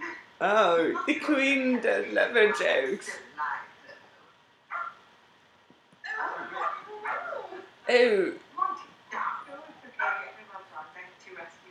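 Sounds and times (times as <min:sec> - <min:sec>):
speech: 0:00.4 - 0:03.3, 0:07.9 - 0:08.4
dogs barking in short yappy bursts: 0:04.7 - 0:05.1, 0:06.2 - 0:07.7.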